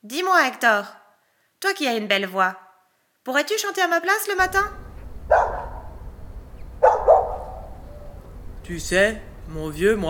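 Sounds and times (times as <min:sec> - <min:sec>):
speech: 0:00.0 - 0:01.0, 0:01.6 - 0:02.6, 0:03.2 - 0:04.8, 0:08.7 - 0:10.0
dog barking: 0:05.1 - 0:08.3.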